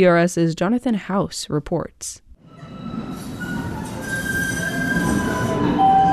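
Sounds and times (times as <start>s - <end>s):
speech: 0.0s - 2.2s
light rail train rolling along its tracks: 2.4s - 6.1s
thin metallic wheel squeals of a light rail train: 2.6s - 6.1s.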